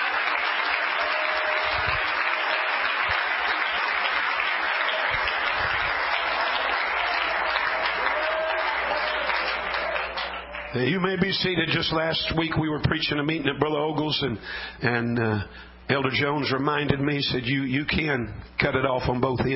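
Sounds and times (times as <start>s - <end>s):
large crowd clapping hands: 0.0s - 12.4s
speech: 10.8s - 19.5s.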